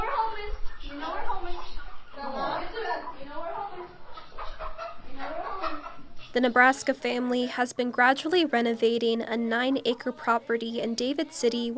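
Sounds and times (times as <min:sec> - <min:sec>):
chickens clucking and squawking while herded into a pen in a barn in Nebraska: 0:00.0 - 0:06.4
speech: 0:06.3 - 0:11.7.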